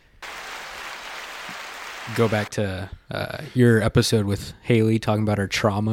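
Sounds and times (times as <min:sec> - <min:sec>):
canned crowd applause from a soundboard: 0:00.0 - 0:02.5
speech: 0:02.1 - 0:05.9.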